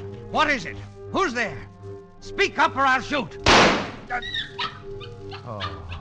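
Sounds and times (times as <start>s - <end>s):
speech: 0.3s - 5.8s
dog whimpering and yipping: 4.2s - 5.9s.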